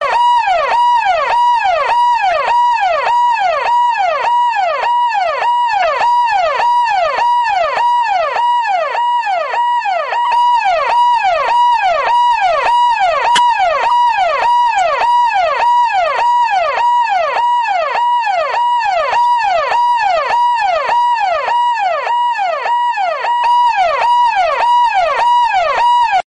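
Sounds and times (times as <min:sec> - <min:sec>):
Delhi police siren ringtone: 0:00.0 - 0:26.2.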